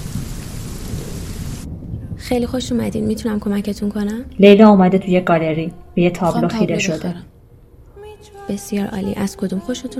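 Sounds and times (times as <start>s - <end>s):
heavy rain: 0.0s - 3.6s
deep continuous rumble of thunder: 0.0s - 4.3s
speech: 2.2s - 7.3s, 8.5s - 9.9s.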